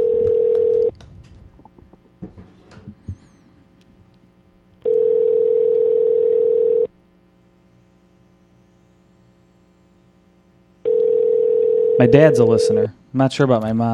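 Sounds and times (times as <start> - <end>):
electronic telephone tone pulses on a line: 0.0 - 0.9, 4.8 - 6.9, 10.8 - 12.8
speech: 12.0 - 13.9.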